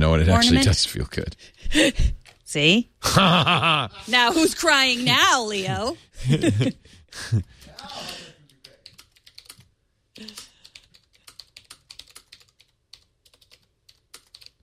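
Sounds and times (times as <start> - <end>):
speech: 0.0 - 8.2
laughter: 3.0 - 8.4
loud breathy vocal noises: 5.1 - 8.4
typing on a clicky typewriter-style keyboard for an iPad: 7.7 - 14.6.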